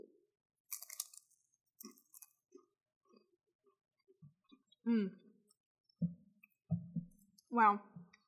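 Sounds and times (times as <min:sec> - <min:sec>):
mouth clicks and smacks chewing apple-smoked Gouda cheese: 0:00.7 - 0:02.4
speech: 0:04.9 - 0:05.2, 0:07.6 - 0:07.9.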